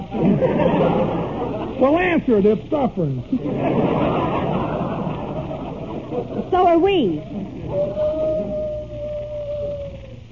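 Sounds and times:
laughter: 0.0s - 1.9s, 3.3s - 8.8s
speech: 1.8s - 4.4s, 6.1s - 8.6s
long steady wolf-like howl: 7.6s - 10.2s.

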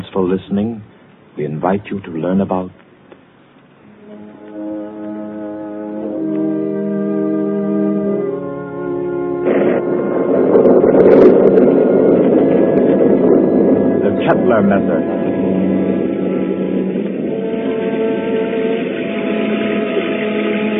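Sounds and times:
speech: 0.0s - 2.8s, 14.5s - 15.2s
moaning night wind: 4.1s - 20.7s
roaring storm: 5.4s - 20.7s.

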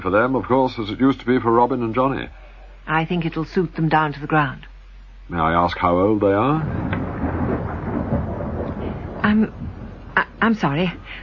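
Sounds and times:
speech: 0.0s - 4.7s, 5.3s - 7.0s, 9.3s - 9.6s, 10.2s - 11.2s
thunder rumbling: 5.7s - 11.2s.

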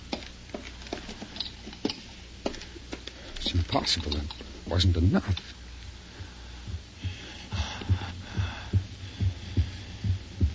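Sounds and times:
faint airy hiss: 0.0s - 10.5s
speech: 3.5s - 5.6s
low heartbeat of a creature coming alive: 6.2s - 10.5s.

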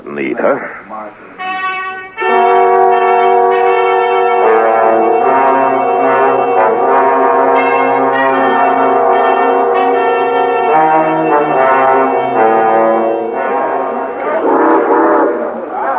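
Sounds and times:
speech: 0.1s - 1.4s
steam train whistle about to pull out: 1.4s - 15.7s
steam train rumbling undertone: 4.4s - 15.9s.

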